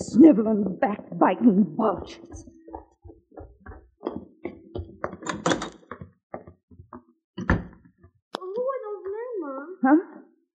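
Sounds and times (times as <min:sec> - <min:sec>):
speech: 0:00.2 - 0:02.5, 0:09.8 - 0:10.0
wooden clunks, rattles and knocks: 0:02.0 - 0:08.1
back door opening and closing: 0:03.4 - 0:06.6, 0:07.4 - 0:08.1.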